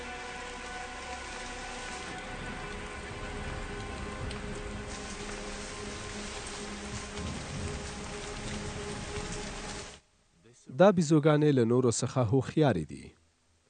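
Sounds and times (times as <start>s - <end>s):
heavy rain pattering on surfaces: 0.0s - 10.0s
speech: 10.8s - 13.2s.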